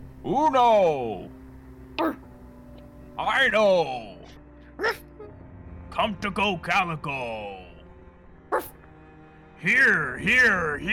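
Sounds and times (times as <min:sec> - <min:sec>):
speech: 0:00.2 - 0:01.4, 0:03.2 - 0:04.1, 0:04.8 - 0:05.0, 0:06.0 - 0:07.6, 0:08.5 - 0:08.8, 0:09.6 - 0:10.9
dog barking: 0:08.5 - 0:08.8.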